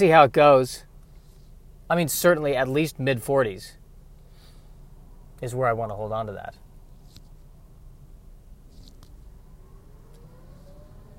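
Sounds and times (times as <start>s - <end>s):
speech: 0.0s - 0.9s, 1.9s - 3.8s, 5.4s - 6.6s
truck driving by: 9.3s - 11.1s.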